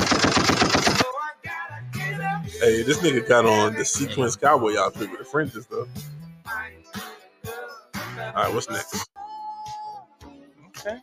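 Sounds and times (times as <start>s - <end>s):
rapid gunfire: 0.0s - 1.1s
speech: 2.6s - 7.1s, 8.3s - 9.3s, 10.8s - 11.0s.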